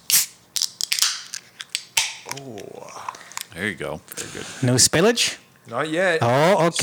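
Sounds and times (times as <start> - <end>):
beer can cracking open: 0.1 - 3.5
speech: 2.3 - 6.8.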